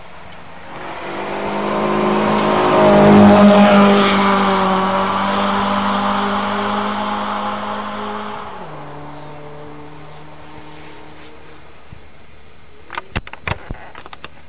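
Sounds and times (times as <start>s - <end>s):
car engine revving hard during a timed run: 0.5s - 11.6s.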